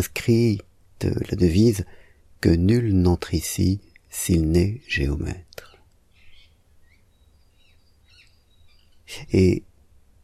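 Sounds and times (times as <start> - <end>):
speech: 0.0 - 5.7, 9.1 - 9.7
birds chirping and whistling in the morning: 6.1 - 9.1.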